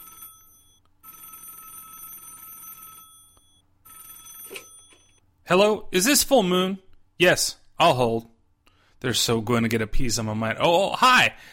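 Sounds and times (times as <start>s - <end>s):
old-fashioned telephone bell ringing: 0.0s - 5.2s
speech: 5.5s - 8.3s, 9.0s - 11.5s.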